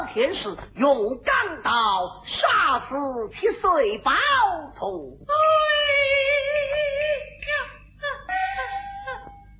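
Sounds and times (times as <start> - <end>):
speech: 0.1 - 6.5
woman crying: 8.0 - 9.5.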